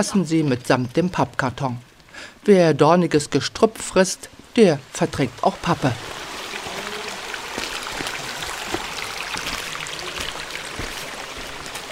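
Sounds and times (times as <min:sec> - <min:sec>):
speech: 0:00.0 - 0:06.2
water flowing through a walled stone irrigation channel in the mountains: 0:05.7 - 0:11.9.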